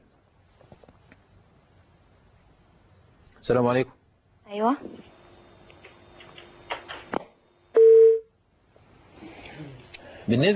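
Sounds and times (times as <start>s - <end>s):
low noise: 0.0s - 10.5s
speech: 3.4s - 5.1s, 10.3s - 10.5s
telephone tone on an incoming call-in line: 7.8s - 8.3s.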